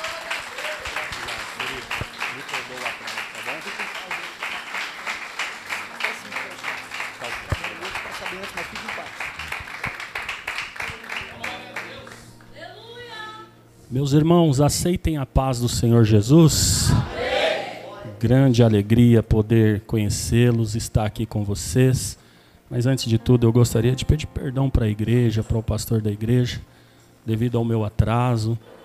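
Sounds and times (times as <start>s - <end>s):
church audience applauding loudly to receive a preacher: 0.0s - 12.4s
speech: 13.9s - 17.3s, 18.2s - 28.8s.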